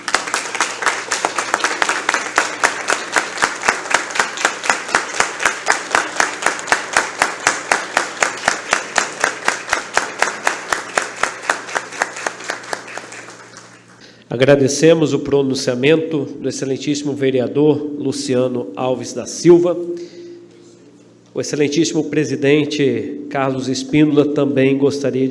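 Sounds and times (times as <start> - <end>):
audience applauding: 0.0 - 14.0
speech: 14.3 - 20.2, 21.4 - 25.2.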